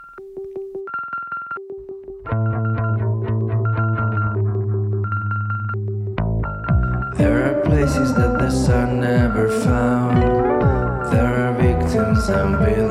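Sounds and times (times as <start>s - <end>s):
pulsing buzzy synth-like notes: 2.3s - 12.8s
instrumental rock band with drums, bass and distorted tones: 6.7s - 12.8s
speech: 7.8s - 10.3s.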